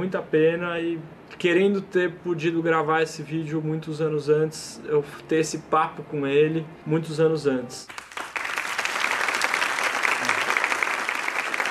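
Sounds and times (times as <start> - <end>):
speech: 0.0 - 8.1
crowd applauding: 7.9 - 11.6.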